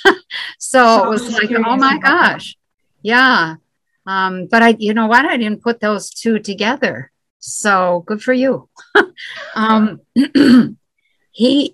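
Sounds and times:
speech: 0.6s - 10.8s, 11.4s - 11.7s
person clearing throat: 10.2s - 10.8s.

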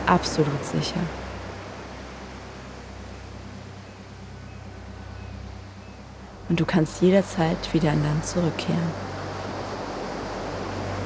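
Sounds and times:
gentle ocean surf washing ashore: 0.0s - 11.0s
speech: 0.1s - 1.2s, 6.5s - 9.1s.

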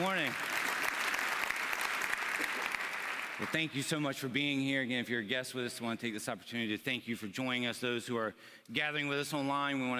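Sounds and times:
crowd applauding: 0.0s - 3.8s
speech: 3.4s - 9.9s.

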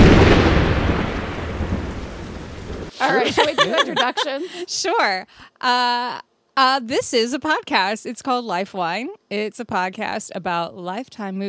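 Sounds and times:
rolling thunder: 0.0s - 2.9s
rain-like hiss: 0.0s - 3.1s
laughter: 3.0s - 5.0s
speech: 3.0s - 11.4s.

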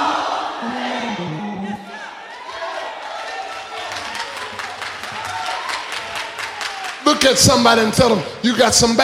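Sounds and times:
large crowd screaming and cheering: 0.0s - 7.1s
scattered clapping: 3.4s - 7.4s
speech: 7.2s - 9.0s.

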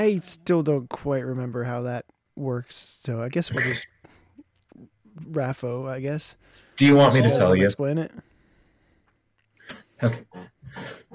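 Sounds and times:
speech: 0.0s - 3.9s, 4.8s - 8.3s, 9.7s - 11.1s
person sneezing: 3.6s - 3.9s
rough breathy vocal sounds: 8.2s - 11.1s.

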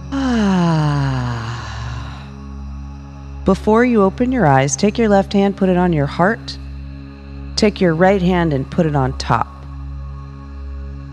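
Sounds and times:
long deep exhale through the mouth during a guided breathing exercise: 0.0s - 2.4s
speech: 3.4s - 6.6s, 7.6s - 9.5s.

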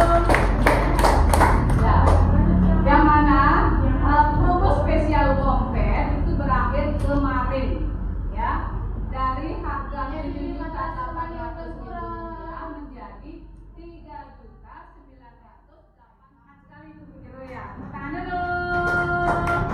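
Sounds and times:
sharp evenly spaced claps: 0.0s - 2.3s, 18.4s - 19.7s
low hum: 0.0s - 19.7s.

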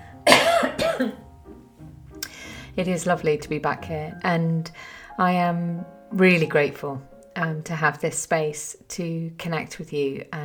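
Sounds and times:
harsh coughs: 0.2s - 1.2s
speech: 2.8s - 10.4s.

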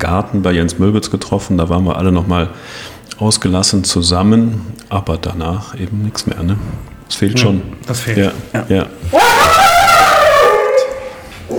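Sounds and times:
speech: 0.0s - 9.6s
dog under a table whining yelp after being accidentally touched: 9.1s - 11.5s.

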